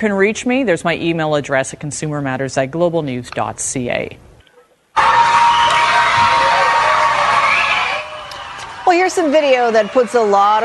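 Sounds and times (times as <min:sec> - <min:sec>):
speech: 0:00.0 - 0:04.3, 0:08.9 - 0:10.6
students and teachers screaming and cheering for joy: 0:05.0 - 0:10.6.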